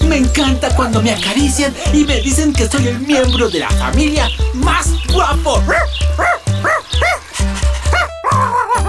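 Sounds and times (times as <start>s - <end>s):
speech: 0.1s - 5.9s
dog barking with sharp yelping barks: 5.7s - 7.3s, 7.9s - 8.8s.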